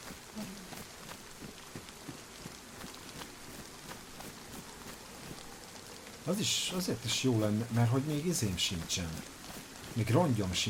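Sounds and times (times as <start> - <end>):
rain in a video game: 0.0 - 10.6
speech: 6.3 - 9.4, 10.0 - 10.6.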